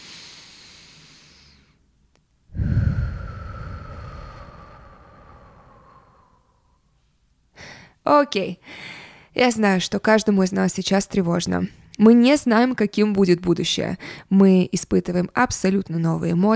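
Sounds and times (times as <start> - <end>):
slow deep breathing: 0.0 - 1.8, 2.5 - 8.0
speech: 8.1 - 16.5.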